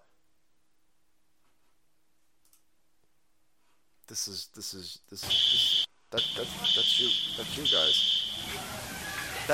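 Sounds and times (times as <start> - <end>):
speech: 4.1 - 9.5
fire alarm beeping: 5.3 - 8.6.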